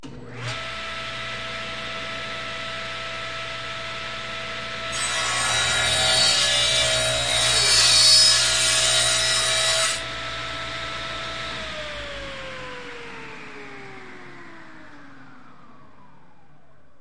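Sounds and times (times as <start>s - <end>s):
table saw: 0.2s - 15.3s.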